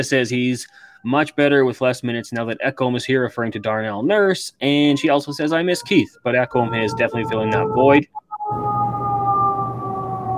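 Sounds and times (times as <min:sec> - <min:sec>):
speech: 0:00.0 - 0:08.7
ambulance siren wailing outside: 0:02.9 - 0:10.3
low rumbling hum: 0:06.2 - 0:10.3.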